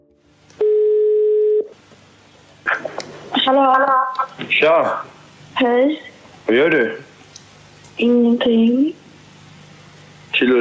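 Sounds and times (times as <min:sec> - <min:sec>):
outgoing phone line ringing tone: 0:00.6 - 0:01.7
speech: 0:03.5 - 0:07.1, 0:08.0 - 0:09.0, 0:10.4 - 0:10.6.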